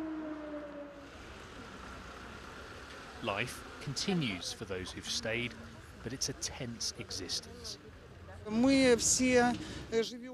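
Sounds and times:
air raid siren wailing in a frontline city: 0:00.0 - 0:01.7
noise: 0:00.0 - 0:10.3
speech: 0:03.2 - 0:07.8, 0:08.4 - 0:10.3.

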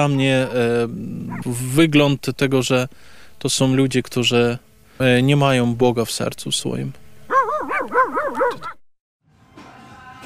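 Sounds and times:
dogs in Kisielówka barking and yelping: 0:00.0 - 0:01.7, 0:07.3 - 0:08.8
speech: 0:00.0 - 0:07.0, 0:07.9 - 0:08.8.

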